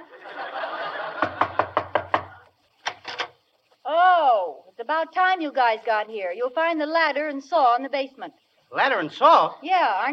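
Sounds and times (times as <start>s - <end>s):
laughter: 0.0s - 2.4s
faint room hiss: 0.0s - 10.1s
knocking on a door: 1.2s - 2.4s
speech: 4.8s - 10.1s.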